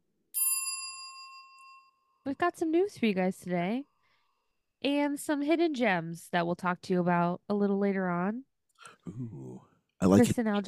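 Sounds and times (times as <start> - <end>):
bright metallic notification bell ding: 0.4 - 2.2
speech: 2.3 - 3.9, 4.8 - 10.6.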